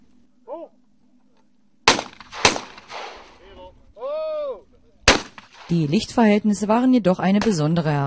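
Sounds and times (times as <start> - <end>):
steady low hum: 0.0 - 8.0
shotgun blasts at a clay target: 1.8 - 3.4, 5.0 - 5.9
speech: 5.7 - 8.0.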